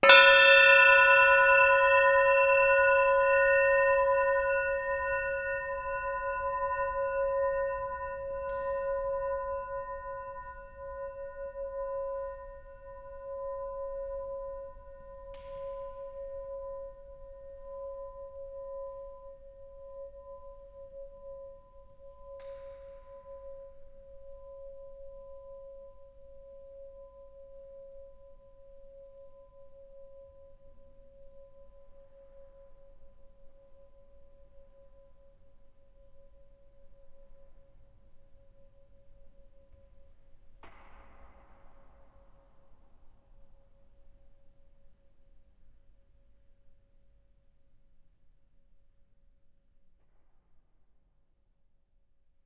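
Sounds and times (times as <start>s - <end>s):
bell drop gong: 0.0s - 24.0s.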